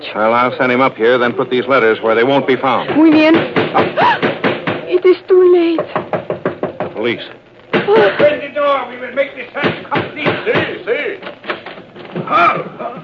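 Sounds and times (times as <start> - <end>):
speech: 0.1 - 4.2, 7.1 - 11.5, 12.3 - 13.0
heavy pounding knocks on a door: 2.9 - 4.9, 5.8 - 7.0, 9.6 - 10.8.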